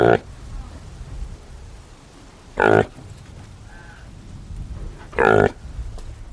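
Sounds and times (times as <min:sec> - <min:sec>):
reindeer calf grunting: 0:00.0 - 0:00.2, 0:02.6 - 0:03.0, 0:05.0 - 0:05.6
steady low hiss: 0:00.0 - 0:06.3.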